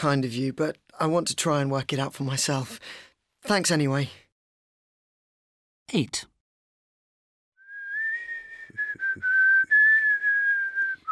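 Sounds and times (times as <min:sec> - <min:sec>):
speech: 0:00.0 - 0:04.2, 0:05.9 - 0:06.3
person whistling a steady sustained tune: 0:07.6 - 0:11.0.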